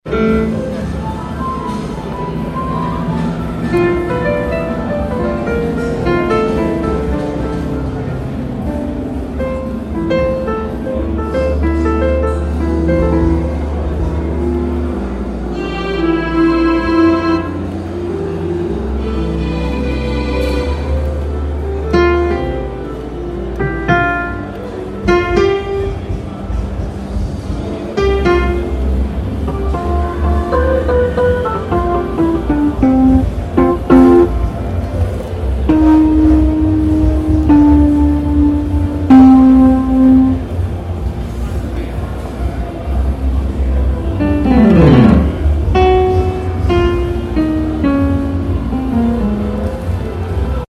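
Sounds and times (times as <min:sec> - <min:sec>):
synth piano: 0:00.0 - 0:50.6.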